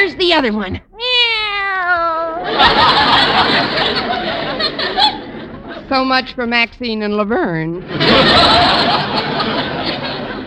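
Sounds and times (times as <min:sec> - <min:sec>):
speech: 0:00.3 - 0:00.9, 0:05.9 - 0:09.5
kitten meowing: 0:00.9 - 0:02.4
audience laughter: 0:02.4 - 0:06.0, 0:07.8 - 0:10.4.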